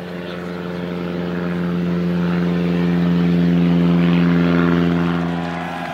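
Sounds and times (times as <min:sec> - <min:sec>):
propeller airplane flying past at an air show: 0:00.0 - 0:05.9.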